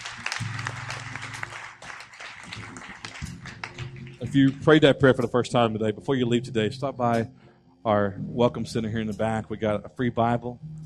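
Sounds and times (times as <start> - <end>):
crowd clapping in a large room: 0.0 - 5.3
speech: 4.3 - 10.8.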